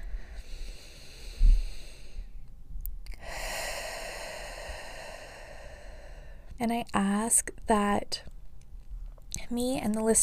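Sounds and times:
deep breath taken during a guided relaxation exercise: 0.0s - 2.4s, 3.1s - 6.6s
speech: 6.6s - 8.3s, 9.5s - 10.2s.

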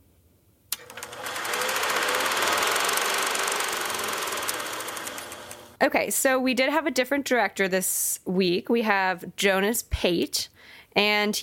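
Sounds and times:
film tape being cranked to play: 0.7s - 5.8s
speech: 5.8s - 11.4s.

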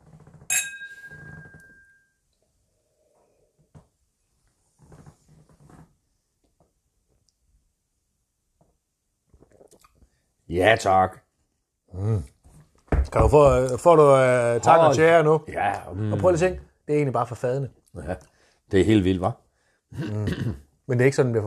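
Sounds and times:
whisky glasses clinking in a toast: 0.5s - 2.1s
soft mouth sounds: 9.3s - 10.0s, 19.9s - 20.6s
quiet sipping and swallowing of whisky: 9.3s - 10.2s
speech: 10.5s - 11.2s, 13.2s - 21.4s.

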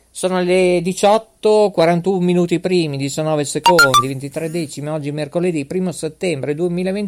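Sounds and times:
speech: 0.2s - 7.0s
phone ringing with bright electronic ringtone melody: 3.7s - 4.1s.

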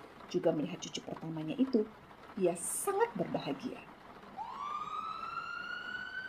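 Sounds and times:
speech: 0.3s - 3.9s
ambulance siren wailing: 4.3s - 6.2s.

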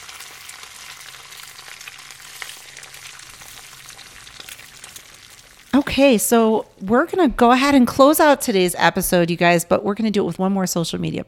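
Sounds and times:
egg sizzling and crackling while frying in a pan: 0.0s - 7.1s
speech: 5.8s - 11.2s.

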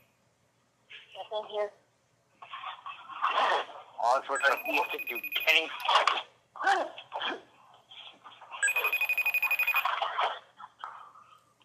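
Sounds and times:
speech: 1.3s - 1.8s, 4.2s - 7.5s
telephone ringing with a trilling electronic burst: 4.3s - 5.8s, 8.6s - 10.3s.

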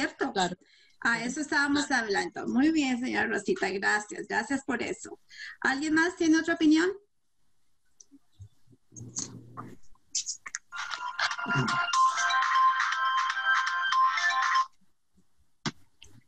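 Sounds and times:
speech: 0.1s - 7.0s, 9.0s - 12.6s
phone ringtone with a bright electronic chirping melody: 10.7s - 14.7s.

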